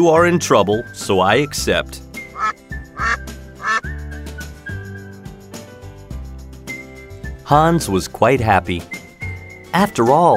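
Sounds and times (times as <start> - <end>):
speech: 0.0 - 2.0, 7.5 - 9.0, 9.7 - 10.3
goose honking: 2.4 - 3.8.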